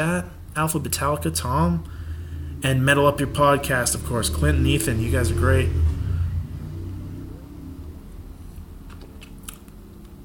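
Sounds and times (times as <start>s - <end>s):
speech: 0.0s - 2.0s, 2.6s - 6.0s
Harley motorcycle engine revving and idling: 1.9s - 8.4s.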